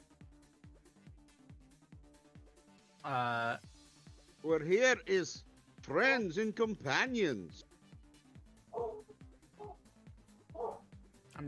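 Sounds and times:
speech: 3.0 - 3.7, 4.4 - 7.6
dog barking: 8.7 - 9.8, 10.5 - 10.9.

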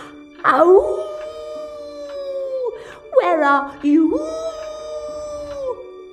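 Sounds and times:
speech: 0.4 - 1.1, 3.2 - 4.6
human voice imitating a lonely wolf howl: 0.4 - 2.8, 4.0 - 5.9.

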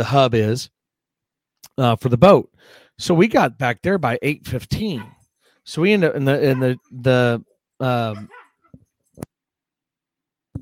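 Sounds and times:
speech: 0.0 - 0.8, 1.7 - 8.4
dogs barking: 4.8 - 5.2, 6.3 - 7.0, 8.0 - 8.8.

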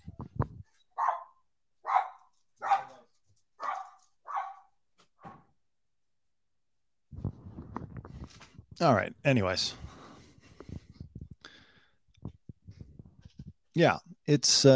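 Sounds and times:
dogs barking shut in a room: 1.0 - 3.0, 3.6 - 4.7
speech: 8.8 - 9.8, 13.8 - 14.7.

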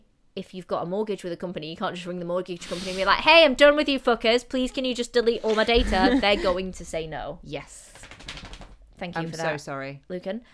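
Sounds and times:
speech: 0.4 - 8.0, 9.0 - 10.5
laughter: 5.4 - 6.7
dachshund shaking itself off with ears flapping: 7.8 - 8.8.

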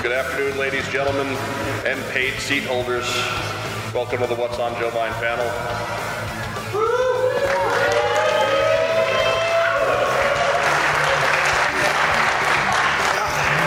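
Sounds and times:
speech: 0.1 - 6.0
large crowd applauding: 6.8 - 13.6.

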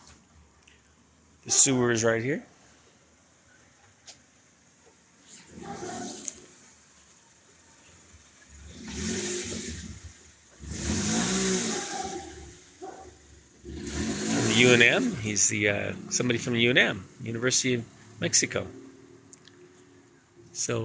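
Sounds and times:
speech: 1.5 - 2.5, 15.2 - 18.8, 20.6 - 20.8
car driving past in a narrow alley: 8.4 - 20.6.

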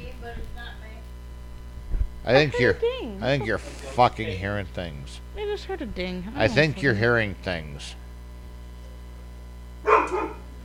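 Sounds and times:
speech: 2.3 - 8.0
dog barking: 9.8 - 10.5
dog yelping: 9.9 - 10.5.

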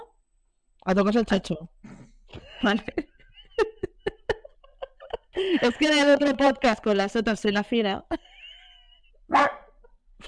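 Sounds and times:
speech: 0.8 - 2.0, 2.6 - 3.7, 5.4 - 8.2
laughter: 2.3 - 6.1
dog barking: 9.3 - 9.8.

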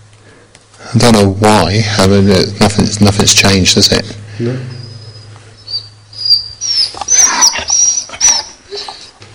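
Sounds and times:
low steady hum: 0.0 - 9.3
speech: 0.8 - 4.8
female dog whining: 4.7 - 9.2.

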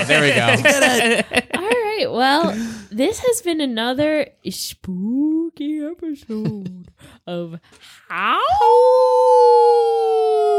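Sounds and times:
laughter: 0.0 - 2.6
speech: 0.1 - 10.5
person imitating a howl: 8.2 - 10.5.

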